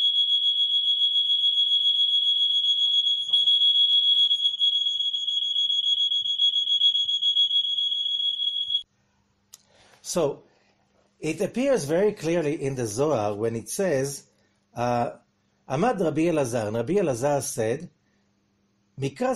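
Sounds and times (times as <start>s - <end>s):
shrill steady alarm tone: 0.0s - 8.8s
speech: 10.1s - 10.5s, 11.2s - 18.0s, 19.0s - 19.3s.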